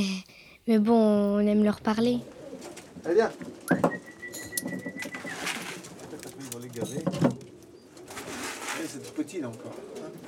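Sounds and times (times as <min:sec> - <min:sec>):
speech: 0:00.0 - 0:02.4, 0:03.0 - 0:03.9, 0:06.8 - 0:07.3, 0:08.9 - 0:10.2
pigeons cooing in a loft: 0:01.9 - 0:10.2
rustling: 0:02.0 - 0:10.2.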